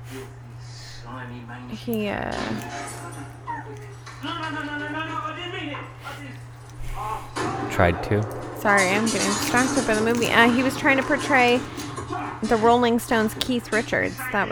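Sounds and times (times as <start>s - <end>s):
speech: 1.1s - 14.5s
dog whining and whimpering with yips: 2.6s - 4.2s.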